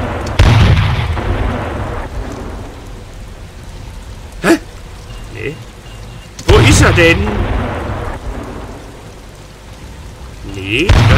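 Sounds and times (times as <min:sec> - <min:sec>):
tank cannon firing in a video game: 0:00.4 - 0:01.9, 0:10.9 - 0:11.1
speech: 0:06.8 - 0:07.4, 0:10.7 - 0:11.1.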